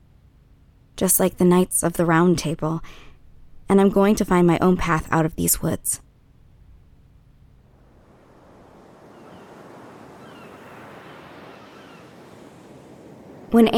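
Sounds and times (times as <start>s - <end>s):
wind: 0.0s - 13.7s
speech: 1.0s - 3.1s, 3.7s - 6.0s, 13.5s - 13.7s
sea waves breaking on shore: 7.6s - 13.7s.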